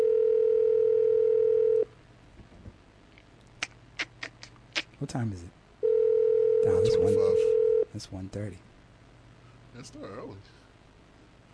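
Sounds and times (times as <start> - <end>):
electronic ringback tone of an outgoing phone call: 0.0 - 1.9, 5.8 - 7.8
speech: 5.0 - 5.6, 6.6 - 8.7, 9.8 - 10.6.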